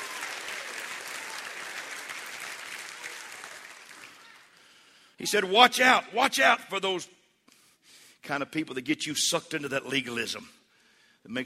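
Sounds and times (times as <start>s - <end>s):
audience clapping and cheering: 0.0s - 4.6s
speech: 5.2s - 7.2s, 8.2s - 10.6s, 11.2s - 11.4s.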